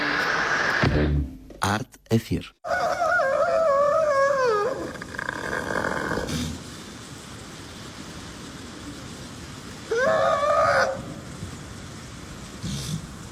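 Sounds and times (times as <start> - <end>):
speech: 0.9 - 2.9
seal calling: 2.6 - 6.6, 9.9 - 11.2.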